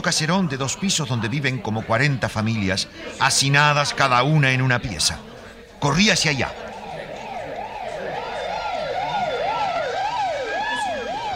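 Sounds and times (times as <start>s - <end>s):
speech: 0.0s - 6.7s
street noise rumbling: 5.8s - 11.3s
ambulance and police car sirens wailing: 6.2s - 11.3s.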